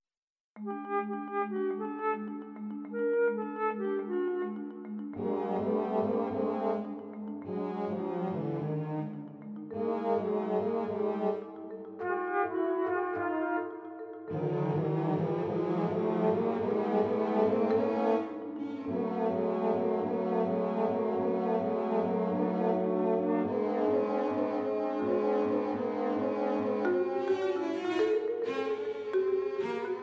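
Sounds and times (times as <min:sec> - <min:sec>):
chamber music in 26 equal divisions of the octave: 0:00.6 - 0:30.0.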